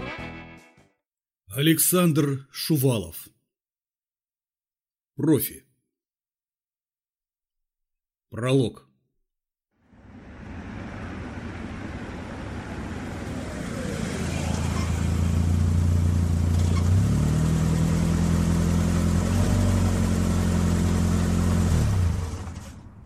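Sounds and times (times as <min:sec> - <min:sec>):
speech: 0:01.5 - 0:03.3, 0:05.2 - 0:05.7, 0:08.3 - 0:08.9
SUV engine rumbling while braking and driving into parking lot: 0:09.9 - 0:23.0.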